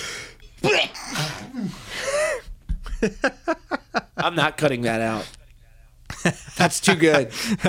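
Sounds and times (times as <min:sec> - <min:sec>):
loud sneeze with a sharp gasping intake: 0:00.6 - 0:01.9
speech: 0:03.0 - 0:03.4, 0:04.2 - 0:05.4, 0:06.2 - 0:07.6.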